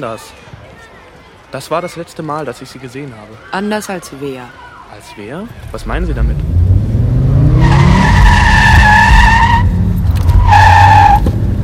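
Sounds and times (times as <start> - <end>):
speech: 0.0 - 0.6, 1.5 - 6.5
low rumble of car engine noise: 5.5 - 11.6
car tires squealing while cornering on Storrow Drive: 7.2 - 11.4.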